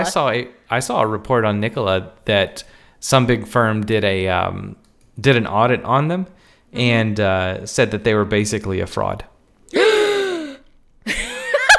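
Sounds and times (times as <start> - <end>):
choppy gasp-like vocal outburst: 0.0 - 0.4
speech: 0.0 - 10.0
person gasping in surprise: 9.7 - 10.7.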